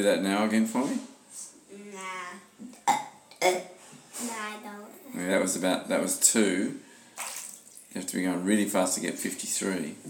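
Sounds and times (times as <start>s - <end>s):
speech: 0.0s - 1.5s, 4.4s - 6.9s, 7.9s - 10.0s
person making fake burps with their voice: 2.8s - 3.8s.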